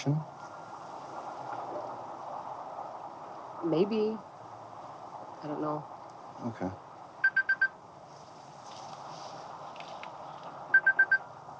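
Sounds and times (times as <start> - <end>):
speech: 0.0 - 0.4, 3.6 - 4.3, 5.4 - 6.8
low noise: 0.0 - 11.5
mobile phone ringing with incoming call in bright electronic beeps: 7.2 - 7.7, 10.8 - 11.2.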